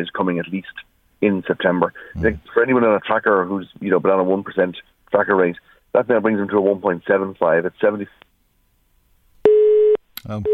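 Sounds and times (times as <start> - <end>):
speech: 0.0 - 8.2, 10.2 - 10.5
telephone busy signal: 9.5 - 10.5.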